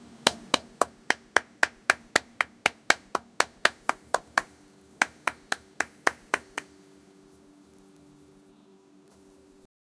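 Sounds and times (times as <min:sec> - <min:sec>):
plapping sound: 0:00.3 - 0:06.7.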